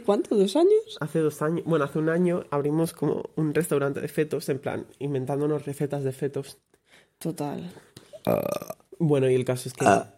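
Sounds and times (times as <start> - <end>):
speech: 0.1 - 10.1
loud drawn-out burp: 8.2 - 8.9, 9.8 - 10.1.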